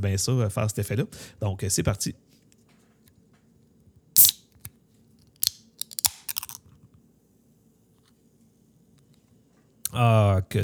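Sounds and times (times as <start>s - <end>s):
speech: 0.0s - 2.4s, 10.0s - 10.6s
500 ml beer can cracked open with a sharp hissing burst: 4.2s - 4.7s, 5.4s - 6.6s
metallic clicks: 5.4s - 6.6s.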